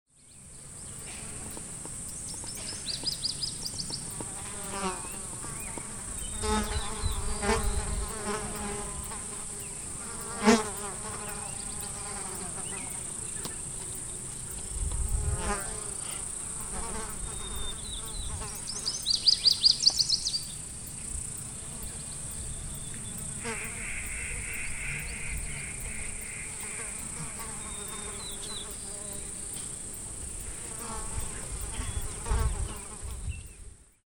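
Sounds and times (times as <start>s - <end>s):
flies buzzing very near: 0.2s - 33.8s.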